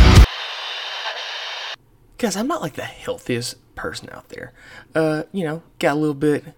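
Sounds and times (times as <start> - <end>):
loud burst of crackling radio static: 0.1 - 1.8
speech: 2.2 - 6.5.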